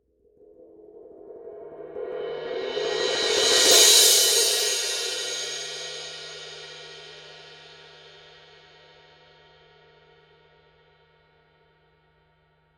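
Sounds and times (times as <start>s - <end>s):
crash cymbal roll: 2.3s - 7.7s.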